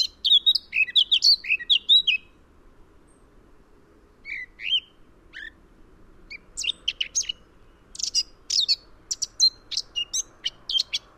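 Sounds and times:
Eurasian blackcap giving warbled phrases, Sylvia atricapilla: 0.0 - 2.3, 4.2 - 5.6, 6.3 - 11.1.

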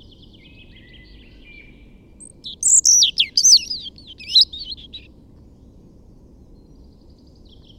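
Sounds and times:
quiet low background hum: 0.0 - 7.7
European robin Erithacus rubecula singing high thin sliding notes: 0.2 - 5.1.

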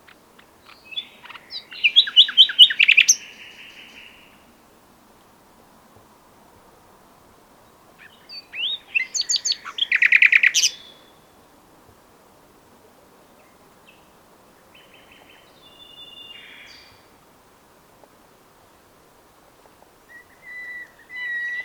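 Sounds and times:
common nightingale (Luscinia megarhynchos) singing: 0.0 - 4.5, 8.0 - 11.3, 13.3 - 17.1, 20.1 - 21.6.

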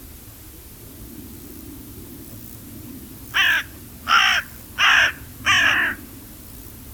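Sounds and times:
carrion crow Corvus corone cawing: 3.3 - 6.1.

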